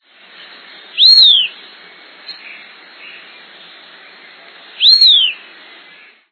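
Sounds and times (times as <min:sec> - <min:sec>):
viuvinha bird calling: 0:00.4 - 0:06.2.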